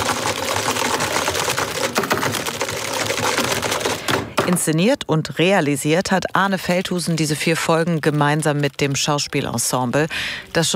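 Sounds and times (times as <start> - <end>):
fast typing on computer keyboards in an office: 0.0 - 4.8, 6.4 - 9.8
speech: 4.5 - 10.7.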